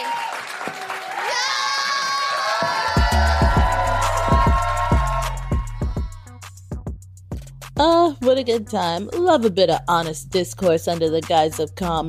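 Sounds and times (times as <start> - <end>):
crowd applause with steady wash of clapping: 0.0 - 5.7
crowd cheering with whoops: 0.0 - 6.3
scattered shouts from the crowd: 1.1 - 6.3
speech: 7.8 - 12.0.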